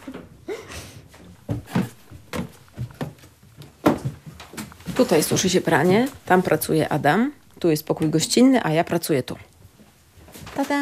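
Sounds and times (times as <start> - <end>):
old wooden house creaking: 1.3 - 6.1
speech: 5.0 - 9.5.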